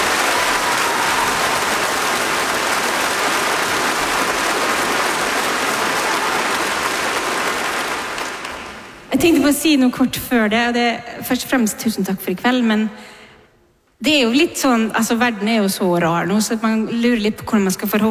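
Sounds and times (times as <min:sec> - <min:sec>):
large crowd clapping: 0:00.0 - 0:09.2
speech: 0:09.2 - 0:13.2, 0:14.0 - 0:18.0.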